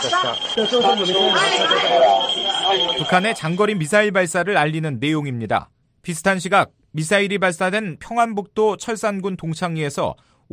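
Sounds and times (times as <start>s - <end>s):
breaking-news terminal alert tone in a broadcaster's newsroom: 0.0s - 3.8s
voices talking loudly: 0.0s - 4.1s
speech: 0.0s - 10.5s.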